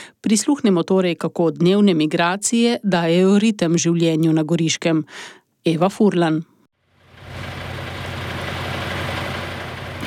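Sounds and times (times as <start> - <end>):
speech: 0.2 - 6.5
bus engine idling at a bus station: 6.8 - 10.0.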